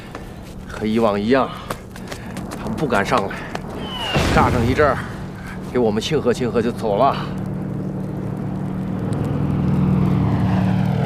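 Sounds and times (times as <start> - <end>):
steady low aircraft engine drone: 0.0 - 11.0
speech: 0.8 - 1.6, 2.8 - 3.5, 4.4 - 5.1, 5.7 - 7.4.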